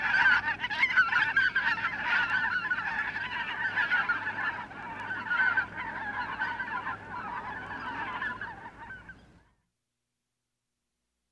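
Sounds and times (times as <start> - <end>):
geese honking: 0.0 - 9.2.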